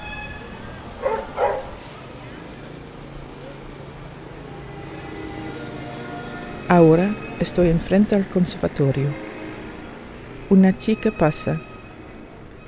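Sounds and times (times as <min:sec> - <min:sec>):
steady street hum with traffic: 0:00.0 - 0:12.6
dog barking on a street: 0:01.0 - 0:01.8
speech: 0:06.7 - 0:09.2, 0:10.5 - 0:11.7.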